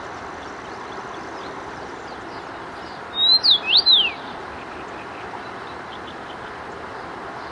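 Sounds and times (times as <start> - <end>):
faint steady background hiss: 0.0 - 7.4
common rosefinch giving a phrase of clear whistled notes: 3.1 - 4.3.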